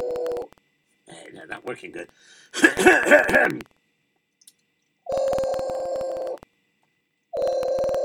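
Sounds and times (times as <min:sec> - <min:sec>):
speech: 0:01.4 - 0:03.8
phone line ringing back with long steady buzzing rings: 0:05.1 - 0:06.4, 0:07.4 - 0:08.0.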